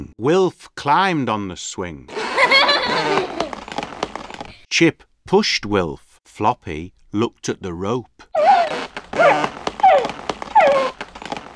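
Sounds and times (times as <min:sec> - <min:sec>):
speech: 0:00.2 - 0:03.4, 0:04.8 - 0:08.4
laughter: 0:02.1 - 0:03.6
faint clicks and rustles: 0:02.8 - 0:04.6, 0:08.4 - 0:11.5
dog barking: 0:08.4 - 0:11.0.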